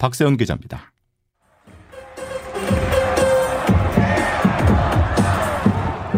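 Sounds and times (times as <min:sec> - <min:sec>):
speech: 0:00.0 - 0:00.9
sold-out crowd cheering and chanting at a professional baseball stadium: 0:01.4 - 0:06.1
rhythmic clapping: 0:01.6 - 0:06.1.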